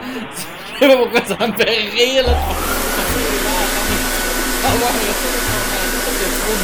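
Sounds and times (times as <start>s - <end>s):
laughter: 0.0s - 6.6s
speech: 0.2s - 2.7s, 4.6s - 6.6s
hair dryer blowing: 2.3s - 6.6s.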